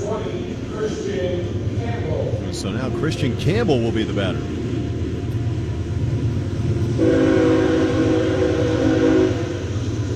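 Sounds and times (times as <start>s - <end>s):
train passing outside a baseball stadium rumbling: 0.0s - 10.1s
speech: 2.6s - 4.6s
train whistle blowing: 6.9s - 9.9s.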